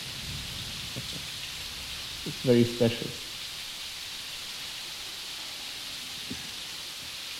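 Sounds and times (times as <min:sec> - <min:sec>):
low rolling thunder: 0:00.0 - 0:05.4
steady dense rain hissing: 0:00.0 - 0:07.3
speech: 0:02.2 - 0:03.2.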